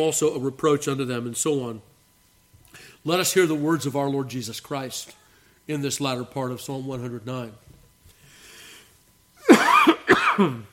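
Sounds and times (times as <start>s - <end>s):
speech: 0.0s - 1.9s, 3.0s - 7.7s, 10.4s - 10.7s
faint breathing: 2.6s - 3.1s, 8.1s - 9.1s
harsh coughs from a tickle in the throat: 9.4s - 10.7s.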